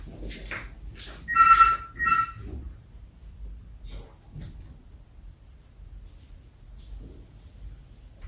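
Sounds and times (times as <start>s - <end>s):
door opening with clunks and rattling: 1.3s - 2.5s.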